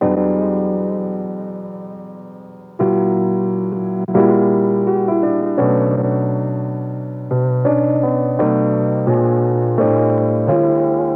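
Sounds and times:
dry piano melody in B minor: 0.0 - 11.1.

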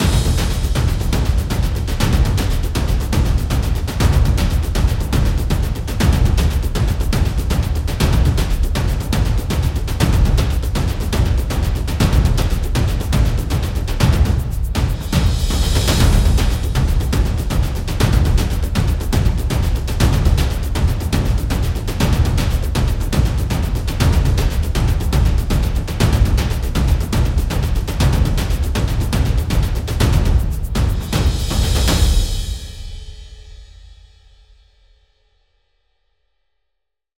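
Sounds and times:
percussion loop: 0.0 - 33.5.

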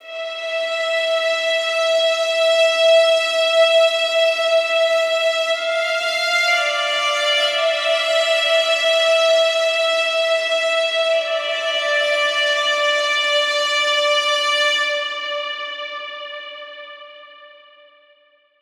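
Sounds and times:
violin in A minor: 0.0 - 18.0.

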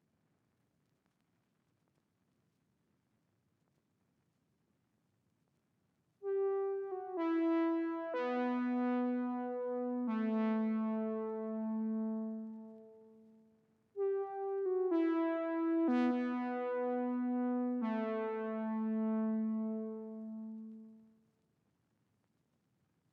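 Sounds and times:
124 BPM E minor lead melody loop: 6.2 - 13.3, 14.0 - 21.0.

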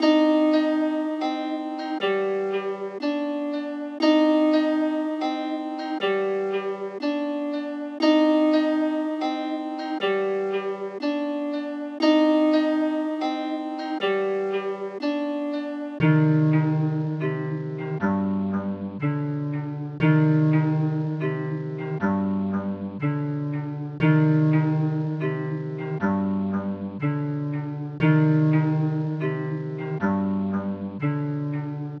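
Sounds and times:
zither loop in C minor at 120 BPM: 0.0 - 31.9.

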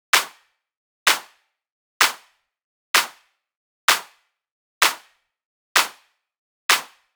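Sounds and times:
melodic techno drum loop with claps: 0.1 - 0.4, 1.1 - 1.3, 2.0 - 2.3, 3.0 - 3.2, 3.9 - 4.1, 4.8 - 5.1, 5.8 - 6.0, 6.7 - 7.0.

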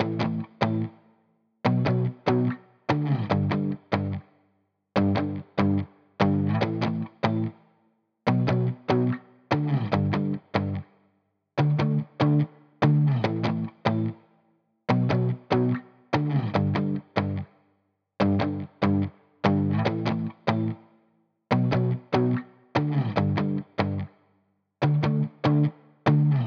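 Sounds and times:
guitar power chords in D major: 0.0 - 1.0, 1.7 - 4.2, 5.0 - 7.6, 8.3 - 10.8, 11.6 - 14.2, 14.9 - 17.4, 18.2 - 20.8, 21.5 - 24.1, 24.8 - 26.4.

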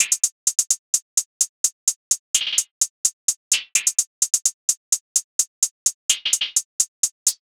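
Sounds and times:
hip hop hi-hat loop: 0.0 - 7.4.

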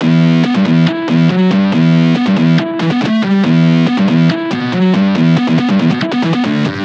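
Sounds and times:
riddim synth scream loop in E: 0.0 - 6.8.

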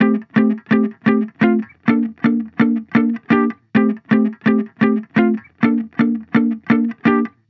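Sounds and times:
funk guitar chord loop in F major for house music: 0.0 - 7.4.

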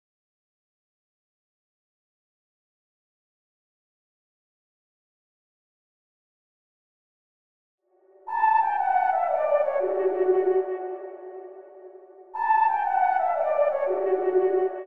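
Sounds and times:
trap flute melody in B minor: 8.0 - 14.8.

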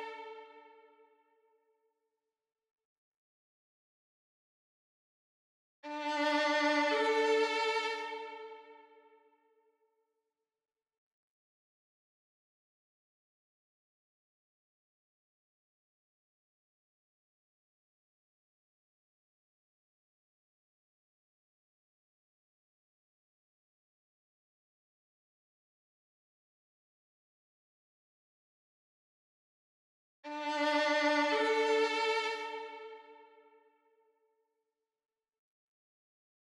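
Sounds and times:
violin melody in D minor: 5.9 - 8.6, 30.2 - 33.2.

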